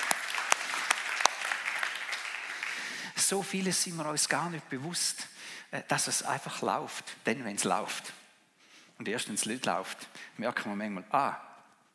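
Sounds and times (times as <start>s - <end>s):
audience applauding a band at a live event: 0.0s - 3.2s
speech: 3.2s - 8.2s, 9.0s - 11.5s.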